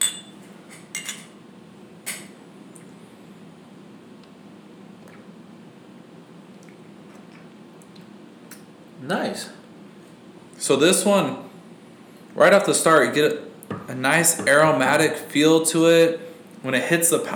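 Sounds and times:
glasses clinking in a toast: 0:00.0 - 0:00.4
low hum: 0:00.0 - 0:17.3
speech: 0:09.0 - 0:09.6, 0:10.7 - 0:11.4, 0:12.4 - 0:17.3.

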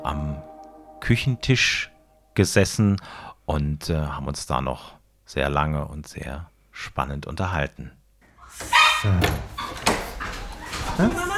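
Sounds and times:
speech: 0:00.0 - 0:09.8, 0:11.0 - 0:11.3
dog barking and yipping: 0:08.7 - 0:09.1.

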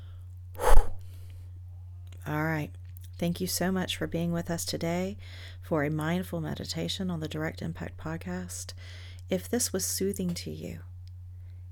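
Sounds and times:
steady low hum: 0:00.0 - 0:11.7
deep breath with an abrupt forceful exhale during a guided mindfulness exercise: 0:00.6 - 0:01.2
speech: 0:02.3 - 0:10.9.

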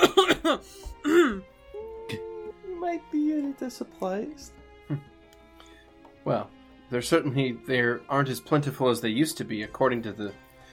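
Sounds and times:
person coughing harshly: 0:00.0 - 0:01.4
throat clearing: 0:00.0 - 0:01.4
speech: 0:03.0 - 0:05.1, 0:06.2 - 0:10.4.

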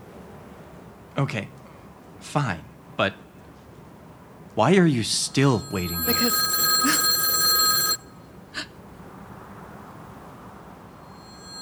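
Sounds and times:
speech: 0:01.2 - 0:01.6, 0:02.2 - 0:03.2, 0:04.6 - 0:07.0
faint chime: 0:05.4 - 0:08.0, 0:11.1 - 0:11.6
loud bright telephone bell ringing: 0:05.4 - 0:08.1, 0:11.1 - 0:11.6.

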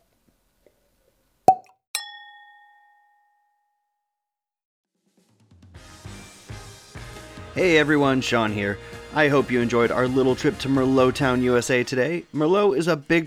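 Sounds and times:
wine glasses clinking together in a toast: 0:01.5 - 0:03.6
speech: 0:07.6 - 0:13.2.

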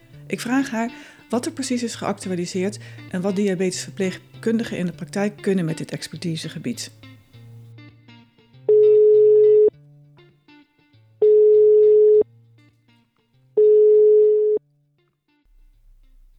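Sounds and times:
speech: 0:00.3 - 0:07.1
ringback tone of an outgoing telephone call: 0:08.7 - 0:09.7, 0:11.2 - 0:12.2, 0:13.6 - 0:14.6.

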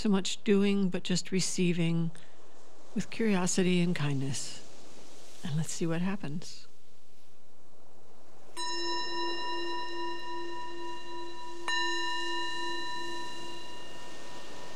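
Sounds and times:
speech: 0:00.0 - 0:02.3, 0:02.9 - 0:04.6, 0:05.4 - 0:06.7
meditation bell struck and ringing: 0:08.6 - 0:14.7.

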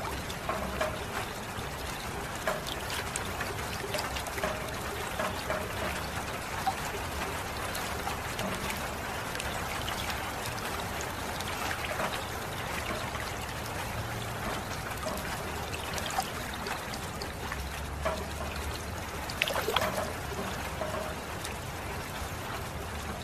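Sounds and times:
water trickling and splashing: 0:00.0 - 0:23.2
brief louder splash: 0:19.4 - 0:20.1.

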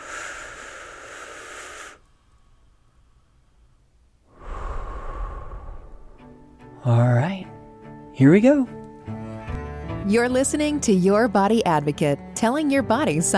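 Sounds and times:
slow deep breathing taken to relax: 0:00.0 - 0:06.8
speech: 0:06.8 - 0:07.4, 0:08.2 - 0:08.8, 0:10.1 - 0:13.3.

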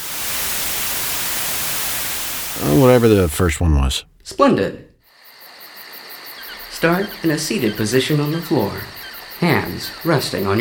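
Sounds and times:
white noise hiss: 0:00.0 - 0:04.0
speech: 0:02.6 - 0:04.9, 0:06.8 - 0:10.5.

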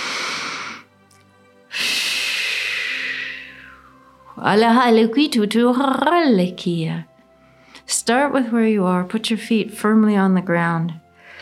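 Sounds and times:
deep breath in and slow exhale: 0:00.0 - 0:01.0, 0:01.7 - 0:04.1, 0:11.1 - 0:11.3
speech: 0:04.4 - 0:07.1, 0:08.0 - 0:11.0.

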